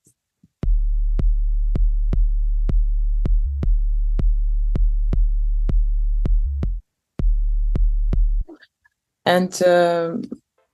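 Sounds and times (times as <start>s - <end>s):
punchy kick drum thumping in an electronic dance track: 0.6s - 8.5s
deep sustained bassline in an electronic dance track: 0.6s - 8.6s
speech: 9.3s - 10.4s.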